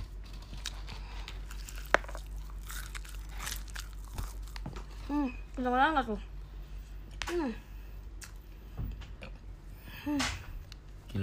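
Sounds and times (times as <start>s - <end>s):
low steady hum: 0.0s - 11.2s
chewing fried tofu chicken: 0.1s - 5.1s
crunchy bites into fried tofu chicken: 0.6s - 4.9s
speech: 5.2s - 6.3s, 7.3s - 7.6s, 10.1s - 10.4s.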